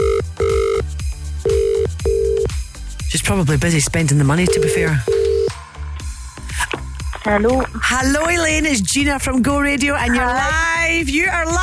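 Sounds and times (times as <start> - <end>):
electronic ringback tone of an outgoing phone call: 0.0 - 2.5, 4.4 - 5.5
speech: 3.2 - 5.2, 7.2 - 11.6.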